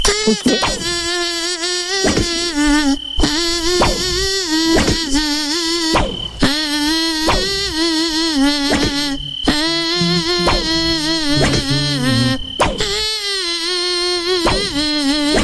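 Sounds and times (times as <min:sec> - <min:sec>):
mosquito-like buzz gliding between pitches tracing a simple tune: 0:00.0 - 0:15.4
speech: 0:00.2 - 0:01.0.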